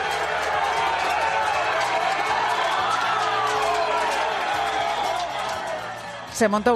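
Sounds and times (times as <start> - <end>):
large crowd of residents protesting and shouting in front of the town hall: 0.0 - 6.7
speech: 6.4 - 6.7.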